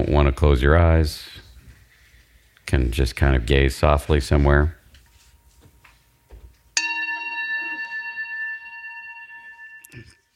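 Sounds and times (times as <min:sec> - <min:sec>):
speech: 0:00.0 - 0:01.4, 0:02.7 - 0:04.8
meditation bell struck during a guided meditation: 0:06.8 - 0:10.3.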